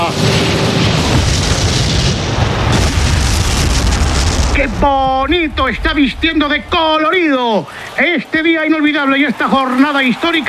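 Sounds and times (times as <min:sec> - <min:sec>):
fireworks exploding: 0:00.0 - 0:08.0
speech: 0:04.6 - 0:10.4.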